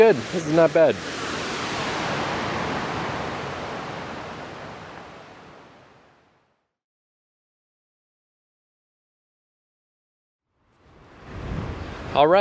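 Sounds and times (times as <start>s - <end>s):
speech: 0.0s - 1.2s, 12.2s - 12.3s
rushing wind outdoors: 0.0s - 6.3s, 10.8s - 12.3s.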